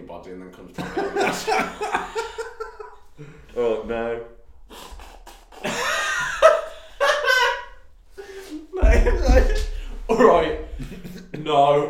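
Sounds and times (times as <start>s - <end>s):
speech: 0.1s - 2.4s, 3.2s - 4.3s
people laughing and chuckling: 0.8s - 3.6s, 4.7s - 11.6s
person blowing nose: 4.7s - 5.6s.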